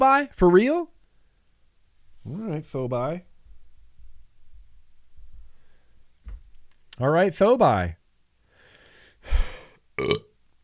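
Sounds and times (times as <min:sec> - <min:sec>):
speech: 0:00.0 - 0:00.9, 0:02.3 - 0:03.3, 0:07.0 - 0:08.0, 0:10.0 - 0:10.3
quiet breathing: 0:01.0 - 0:02.5, 0:05.3 - 0:06.2, 0:08.4 - 0:09.8
loud burps: 0:10.0 - 0:10.4.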